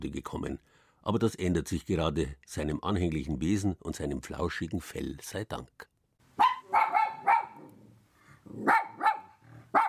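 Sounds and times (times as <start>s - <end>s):
speech: 0.0s - 5.9s, 8.5s - 8.8s
small white Spitz dog barking excitedly: 6.4s - 7.7s, 8.6s - 9.8s.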